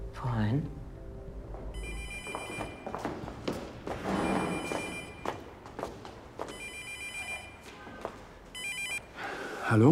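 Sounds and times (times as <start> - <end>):
speech: 0.2 - 0.8, 9.7 - 9.9
telephone ringing with an incoming call: 1.8 - 3.0, 4.0 - 5.4, 6.5 - 7.7, 8.5 - 9.1.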